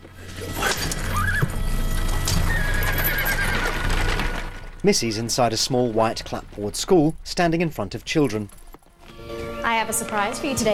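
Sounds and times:
horse hooves clopping: 0.0s - 10.7s
horse-drawn coach wheels rumbling: 0.0s - 10.7s
horse whinnying: 0.1s - 4.8s
speech: 4.8s - 8.6s, 9.7s - 10.7s.

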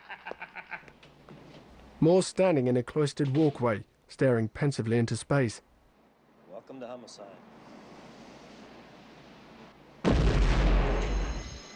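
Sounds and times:
speech: 2.0s - 5.7s, 6.7s - 7.5s
explosion with a sudden heavy boom: 10.0s - 11.6s.

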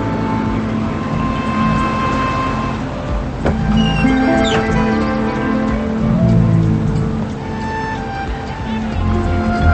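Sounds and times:
school bus engine rumble: 0.0s - 9.7s
school bus squeak and hiss as it settles: 3.4s - 5.1s.

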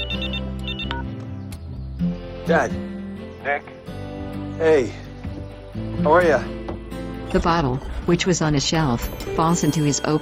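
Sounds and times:
telephone ringing in electronic trills: 0.0s - 1.1s
speech: 2.5s - 3.8s, 4.6s - 5.0s, 5.8s - 6.6s, 7.3s - 10.2s.

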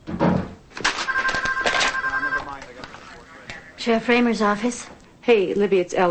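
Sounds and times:
telephone ringing with a steady electronic tone at a police station: 0.9s - 3.2s
speech: 3.8s - 6.0s.

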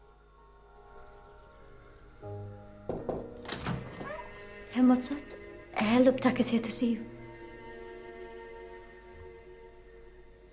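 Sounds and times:
door closing with heavy thunks: 2.9s - 4.6s
speech: 4.8s - 7.1s.

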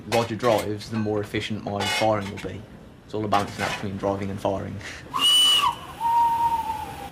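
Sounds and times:
speech: 0.1s - 5.3s
steam locomotive whistle: 5.1s - 7.1s.

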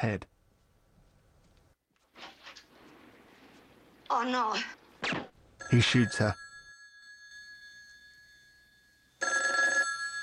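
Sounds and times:
speech: 0.0s - 0.3s, 4.1s - 4.8s, 5.6s - 6.4s
telephone ringing beside a bed: 5.6s - 10.2s.

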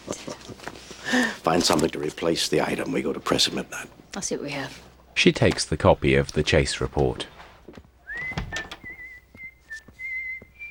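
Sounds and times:
speech: 1.1s - 7.8s
man whistling a steady tune in an office at a radio station: 8.0s - 10.6s.

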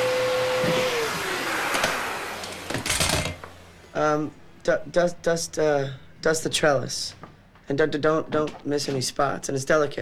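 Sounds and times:
vacuum cleaner running: 0.0s - 4.4s
speech: 4.1s - 10.0s.

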